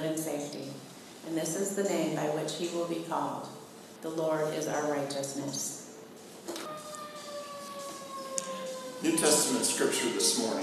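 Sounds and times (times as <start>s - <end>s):
low hum: 0.0s - 10.6s
speech: 1.4s - 5.8s, 9.0s - 10.6s
emergency vehicle siren wailing: 6.6s - 10.6s.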